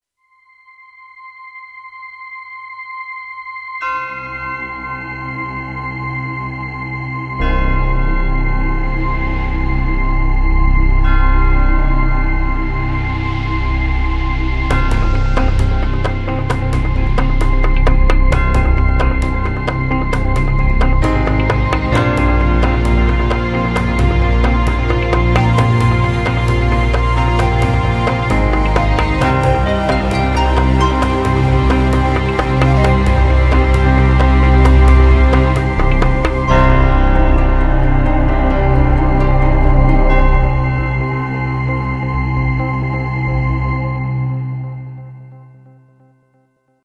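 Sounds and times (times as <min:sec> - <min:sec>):
Shaolin Temple meditation music: 0:00.4 - 0:46.5.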